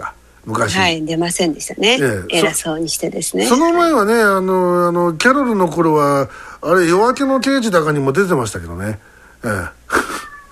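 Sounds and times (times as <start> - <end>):
speech: 0.4 - 9.8
cat meowing: 10.0 - 10.5.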